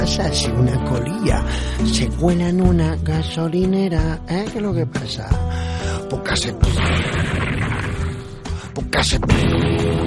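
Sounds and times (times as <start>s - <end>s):
speech: 0.0s - 7.9s, 8.8s - 10.0s
loud rumbling explosion with crackling debris: 6.7s - 8.6s, 9.3s - 10.0s.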